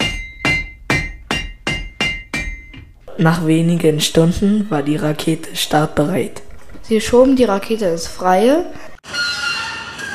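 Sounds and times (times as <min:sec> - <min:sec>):
hammer striking nails with a metallic ring: 0:00.0 - 0:02.9
speech: 0:03.2 - 0:08.9.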